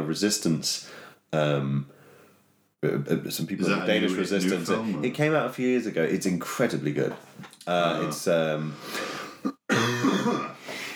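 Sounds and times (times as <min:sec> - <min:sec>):
speech: 0:00.1 - 0:02.0, 0:02.8 - 0:09.1
person clearing throat: 0:09.4 - 0:10.6
person coughing: 0:09.4 - 0:10.7.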